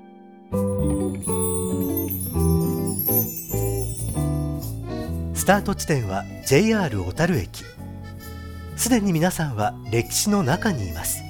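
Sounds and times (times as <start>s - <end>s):
bells chiming a short melody: 0.6s - 5.5s
speech: 5.5s - 7.8s, 8.8s - 11.2s.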